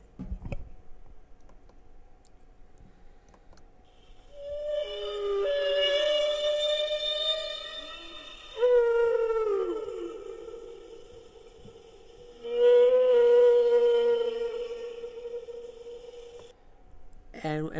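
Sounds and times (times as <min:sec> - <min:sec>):
whale moaning: 0:04.1 - 0:16.5.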